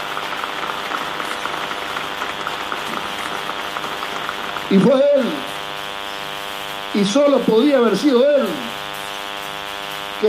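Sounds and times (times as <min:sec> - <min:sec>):
crowd in Argentina applauding a patriotic militia: 0:00.0 - 0:05.4
speech: 0:04.7 - 0:05.5, 0:07.0 - 0:08.7.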